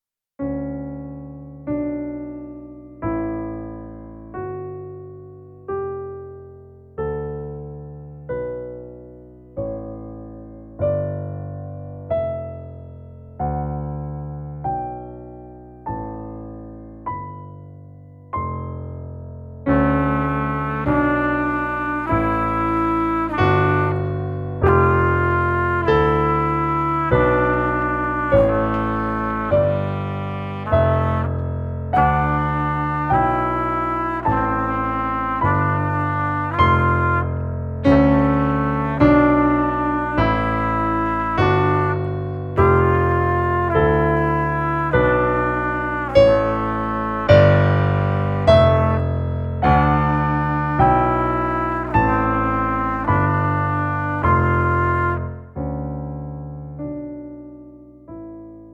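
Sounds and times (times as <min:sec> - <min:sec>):
piano playing in a duet: 0:00.0 - 0:58.7
trumpet playing in a duet: 0:19.7 - 0:55.7.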